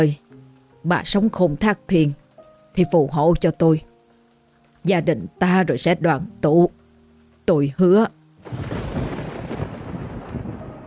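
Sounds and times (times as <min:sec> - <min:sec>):
speech: 0:00.0 - 0:00.2, 0:00.8 - 0:02.2, 0:02.8 - 0:03.9, 0:04.8 - 0:06.8, 0:07.5 - 0:08.7
heavy rain in a storm: 0:00.0 - 0:10.8
thunder rolling in a storm: 0:08.4 - 0:10.8.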